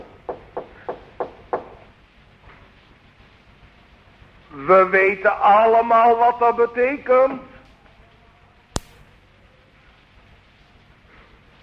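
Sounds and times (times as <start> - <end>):
knocking on a door: 0.2 - 1.8
speech: 4.6 - 7.5.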